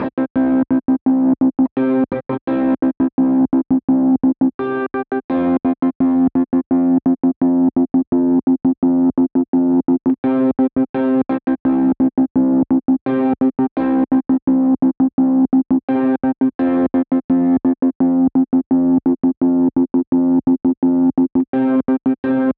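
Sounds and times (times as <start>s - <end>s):
trance guitar in A minor: 0.0s - 22.5s.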